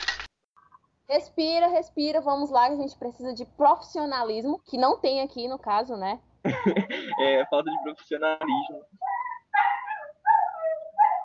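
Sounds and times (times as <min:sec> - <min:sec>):
speech: 0:01.1 - 0:09.2
laughter: 0:06.5 - 0:08.8
dog whimpering and yipping: 0:09.0 - 0:11.2.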